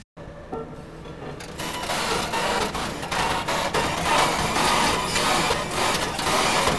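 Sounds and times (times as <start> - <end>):
construction machine at work, grinding and rattling: 1.5 - 6.7.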